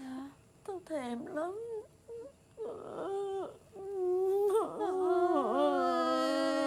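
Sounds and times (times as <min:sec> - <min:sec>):
speech: 0:00.9 - 0:01.7
person imitating a crying baby: 0:03.4 - 0:06.6.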